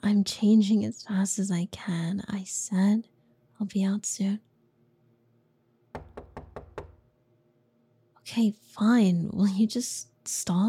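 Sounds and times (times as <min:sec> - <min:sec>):
speech: 0:00.0 - 0:04.5, 0:08.3 - 0:10.6
heavy rapid knocks pounding on a door: 0:06.0 - 0:07.1.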